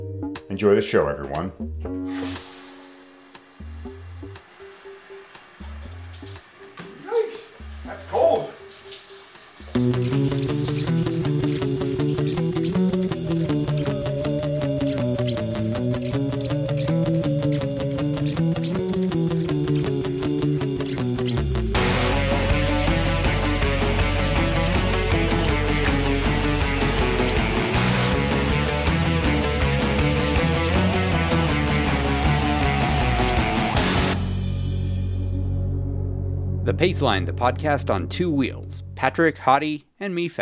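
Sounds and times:
music: 0:00.0 - 0:39.9
speech: 0:00.4 - 0:02.5, 0:36.8 - 0:40.3
cold shower water running: 0:02.1 - 0:34.4.

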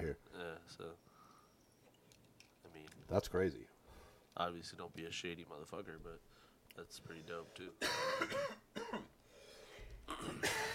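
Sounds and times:
speech: 0:00.1 - 0:01.1, 0:02.6 - 0:03.8, 0:04.4 - 0:09.2, 0:10.2 - 0:10.7
harsh throaty coughing fit: 0:07.8 - 0:09.2, 0:10.1 - 0:10.7.

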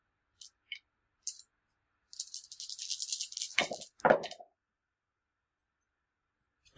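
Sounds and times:
dice rattling in a cup: 0:02.2 - 0:04.4.

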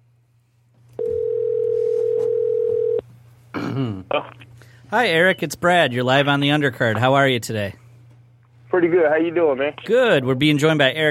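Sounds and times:
electronic telephone line ring tone during outgoing call: 0:01.0 - 0:03.0
speech: 0:04.1 - 0:07.8, 0:08.7 - 0:11.1.

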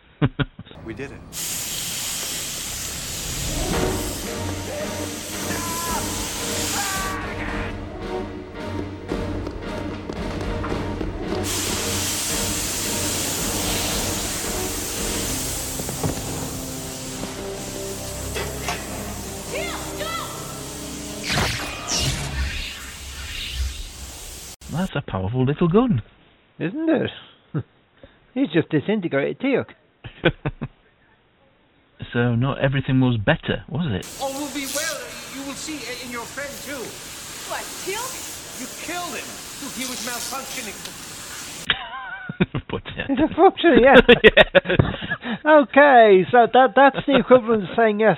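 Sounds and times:
speech: 0:00.2 - 0:01.8, 0:25.0 - 0:27.8, 0:28.4 - 0:30.8, 0:32.0 - 0:34.5, 0:35.5 - 0:41.0, 0:41.7 - 0:48.1
steam hissing from broken pipes: 0:00.8 - 0:07.8, 0:10.8 - 0:24.9, 0:34.0 - 0:41.7.

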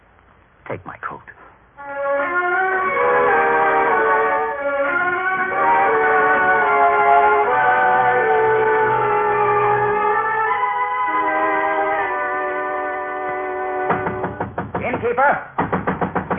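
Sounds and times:
speech: 0:00.7 - 0:03.1
sustained humming musical tones: 0:01.8 - 0:14.4
loud knocks on a door at night: 0:13.9 - 0:16.3.

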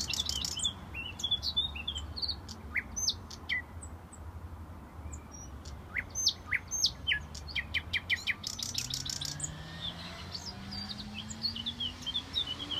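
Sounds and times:
birds chirping and trilling: 0:00.0 - 0:12.7
traffic rumble on a heavily trafficked city road: 0:00.0 - 0:12.7
vehicle engine passing: 0:08.3 - 0:12.7.

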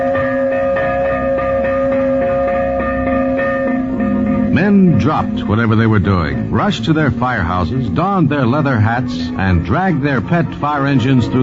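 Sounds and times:
fire bell ringing: 0:00.0 - 0:11.4
speech: 0:04.7 - 0:11.4.

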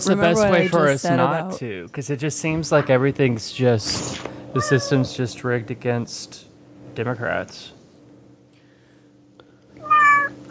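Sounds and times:
speech: 0:00.0 - 0:07.8
faint low hum: 0:00.0 - 0:10.4
cat meowing: 0:04.6 - 0:05.1, 0:09.8 - 0:10.4.

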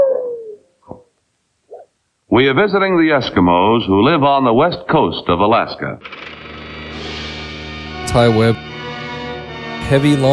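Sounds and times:
husky dog howling: 0:00.0 - 0:00.7
speech: 0:02.4 - 0:06.4, 0:08.1 - 0:08.6, 0:09.9 - 0:10.3.

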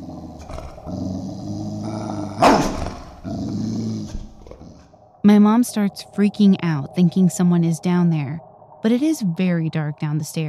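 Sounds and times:
dog growling loudly: 0:00.0 - 0:05.0
dog barking: 0:02.4 - 0:03.0
speech: 0:05.2 - 0:10.4.

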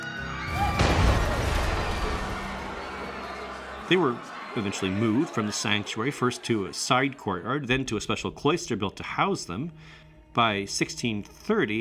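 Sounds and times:
heavy figure toppling and crashing to the ground: 0:00.5 - 0:02.8
laughter: 0:01.4 - 0:07.7
speech: 0:03.9 - 0:11.7.

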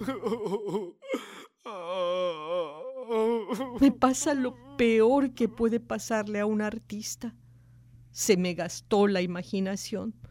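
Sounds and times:
speech: 0:00.0 - 0:01.0, 0:03.5 - 0:07.4, 0:08.2 - 0:10.2
person wailing and sobbing: 0:00.0 - 0:05.7.

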